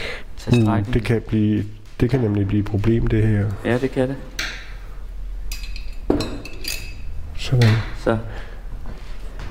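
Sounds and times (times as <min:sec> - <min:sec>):
speech: 0:00.4 - 0:04.4, 0:07.5 - 0:08.5
glass clinking during wine decanting: 0:00.5 - 0:00.9, 0:05.5 - 0:07.2.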